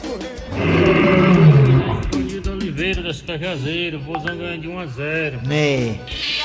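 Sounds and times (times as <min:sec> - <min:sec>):
lion roaring: 0:00.5 - 0:02.6
speech: 0:02.9 - 0:06.3.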